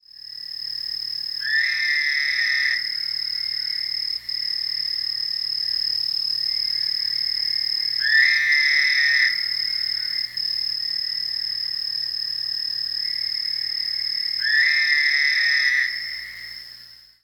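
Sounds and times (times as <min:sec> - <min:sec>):
narrow-mouthed toad calling: 0:01.4 - 0:03.8, 0:07.9 - 0:10.3, 0:14.4 - 0:16.5.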